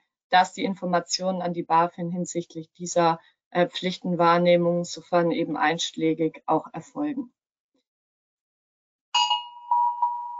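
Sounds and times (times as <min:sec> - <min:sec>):
speech: 0:00.3 - 0:07.4
electronic alarm with chime-like burst and ringing tone: 0:09.2 - 0:10.3.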